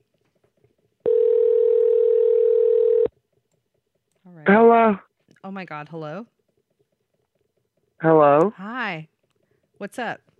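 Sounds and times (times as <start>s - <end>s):
telephone dial tone: 1.0s - 3.1s
speech: 4.9s - 6.4s, 8.0s - 9.1s, 9.8s - 10.3s.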